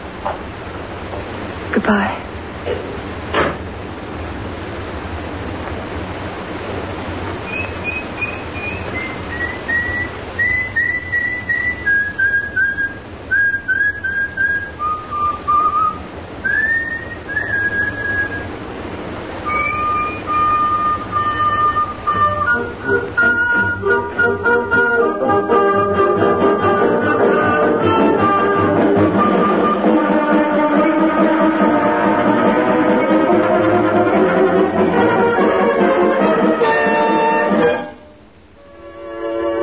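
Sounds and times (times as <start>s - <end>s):
low hum: 0.0s - 39.6s
speech: 1.8s - 2.8s
knock: 3.4s - 3.6s
person whistling a slow tune: 7.5s - 18.5s, 19.5s - 24.6s.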